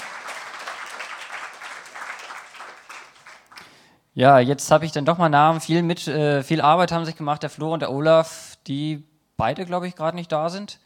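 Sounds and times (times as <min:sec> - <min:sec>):
crowd applause: 0:00.0 - 0:03.6
speech: 0:04.2 - 0:10.8.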